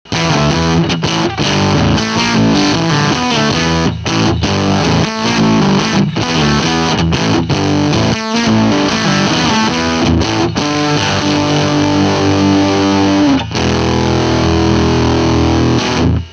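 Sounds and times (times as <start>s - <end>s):
heavy guitar riff: 0.1s - 16.3s.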